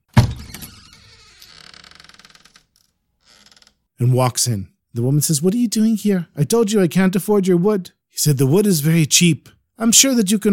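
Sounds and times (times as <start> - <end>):
door hinge creaking and squeaking: 0.1 - 3.9
speech: 4.0 - 10.5.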